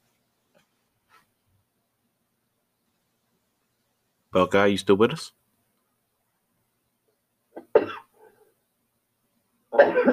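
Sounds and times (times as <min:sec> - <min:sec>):
speech: 0:04.4 - 0:05.4
man coughing harshly: 0:07.6 - 0:08.2, 0:09.8 - 0:10.1.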